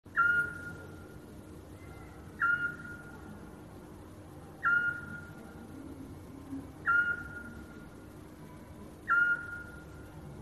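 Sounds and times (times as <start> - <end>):
Eurasian scops owl giving mellow whistled hoots: 0.1 - 0.8, 1.8 - 3.1, 4.6 - 5.3, 6.8 - 7.6, 9.0 - 9.8
faint steady hum: 0.1 - 10.3.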